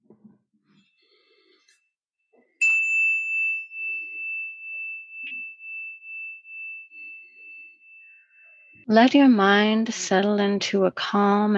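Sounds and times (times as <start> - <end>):
meditation bell ringing: 1.0 - 9.9
speech: 8.9 - 11.5.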